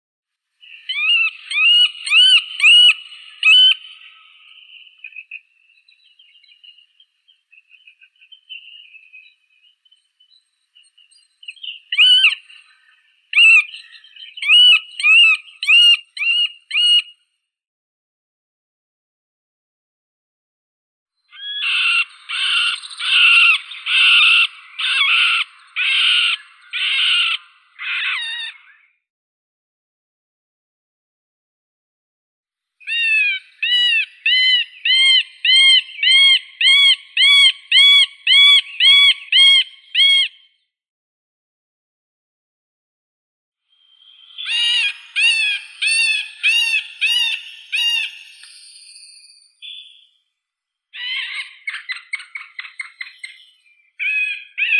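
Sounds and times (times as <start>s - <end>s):
middle spotted woodpecker Dendrocopos medius: 0.6s - 5.4s, 11.1s - 17.1s, 21.3s - 28.8s, 32.9s - 40.4s, 44.0s - 50.0s, 51.0s - 54.7s.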